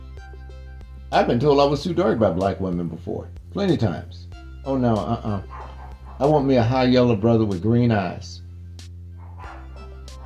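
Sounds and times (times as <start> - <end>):
steady low electrical hum: 0.0 - 10.2
speech: 1.1 - 5.6, 6.2 - 8.4
dog barking in short sharp yelps: 5.4 - 6.4, 9.2 - 10.2.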